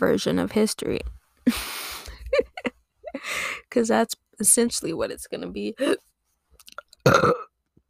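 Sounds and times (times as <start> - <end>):
speech: 0.0 - 2.5, 3.7 - 6.1
two-layered burp into microphone: 7.0 - 7.6.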